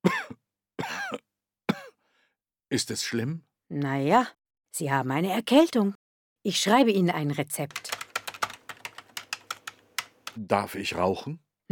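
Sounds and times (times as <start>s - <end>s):
patient with a fever and sore throat coughing at a doctor's request: 0.0s - 2.0s
speech: 2.7s - 8.0s, 10.4s - 11.7s.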